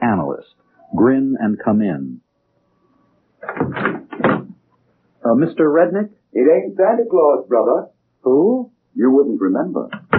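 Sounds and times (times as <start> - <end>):
speech: 0.4 - 2.2, 3.5 - 4.4, 5.2 - 10.0
door creaking open: 3.4 - 4.5
door shutting: 3.4 - 4.5, 9.9 - 10.1.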